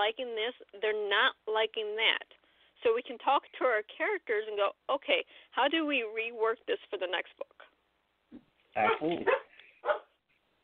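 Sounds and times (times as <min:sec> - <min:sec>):
speech: 0:00.0 - 0:07.6, 0:08.3 - 0:10.0
service dog barking and yipping: 0:08.8 - 0:10.2.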